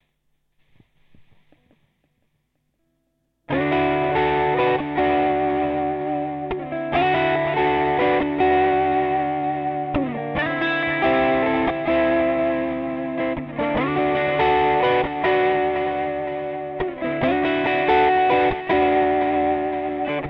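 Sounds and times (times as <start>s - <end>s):
guitar riff: 3.5s - 20.2s.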